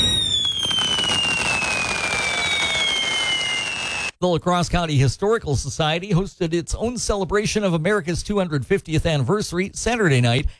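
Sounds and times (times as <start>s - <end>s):
firework whistle falling outdoors: 0.0s - 4.2s
speech: 4.2s - 10.5s.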